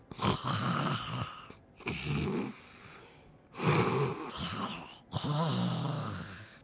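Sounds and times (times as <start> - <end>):
person snoring loudly with rasping breaths: 0.1 - 6.6.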